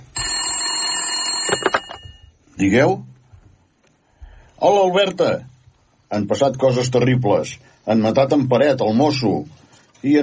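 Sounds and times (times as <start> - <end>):
telephone metallic bell ringing: 0.1 - 2.4
speech: 2.6 - 3.1, 4.6 - 5.5, 6.1 - 10.2.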